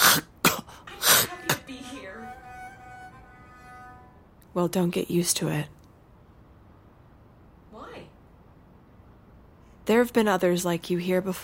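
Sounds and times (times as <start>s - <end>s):
person coughing: 0.0s - 1.6s
speech: 4.6s - 5.8s, 9.9s - 11.4s.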